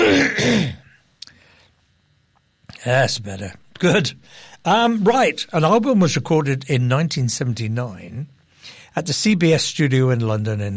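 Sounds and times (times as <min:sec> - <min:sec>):
live radio presenter clearing his throat: 0:00.0 - 0:01.0
speech: 0:02.8 - 0:10.7.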